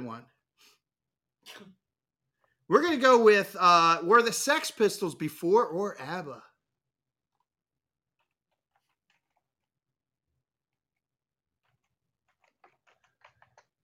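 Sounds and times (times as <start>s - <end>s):
speech: 0.1s - 0.8s, 1.5s - 1.8s, 2.7s - 6.5s
typing on a computer keyboard: 11.7s - 13.8s.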